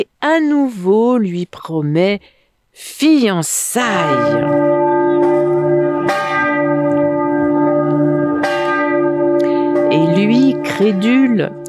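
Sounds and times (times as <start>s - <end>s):
speech: 0.0s - 5.5s, 10.8s - 11.6s
church bells ringing with deep humming tones: 3.9s - 11.6s.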